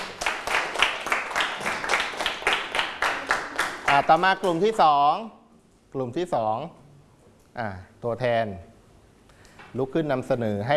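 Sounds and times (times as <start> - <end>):
group of students clapping in a room: 0.0 - 4.6
speech: 4.0 - 6.8, 7.6 - 8.7, 9.7 - 10.7.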